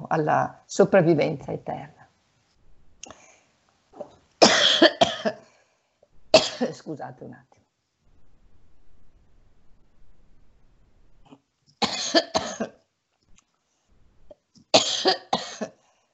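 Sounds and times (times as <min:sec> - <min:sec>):
speech: 0:00.1 - 0:02.0, 0:06.6 - 0:07.6
coughing: 0:04.0 - 0:05.4, 0:06.3 - 0:06.8, 0:11.8 - 0:12.8, 0:14.7 - 0:15.8
low rumble: 0:08.1 - 0:11.3.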